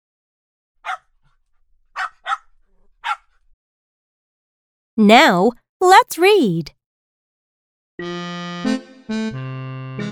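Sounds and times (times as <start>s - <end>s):
dog barking: 0.8s - 1.2s, 2.0s - 3.4s
speech: 5.0s - 6.8s, 8.0s - 9.5s.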